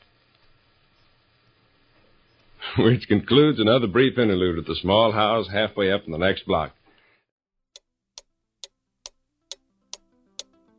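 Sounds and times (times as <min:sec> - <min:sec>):
speech: 0:02.8 - 0:06.8
wall clock ticking: 0:07.8 - 0:10.7.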